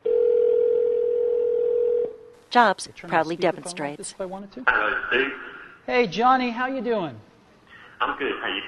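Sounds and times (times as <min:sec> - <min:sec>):
iPhone phone call dial tone: 0:00.0 - 0:02.1
speech: 0:02.5 - 0:07.3, 0:08.0 - 0:08.6.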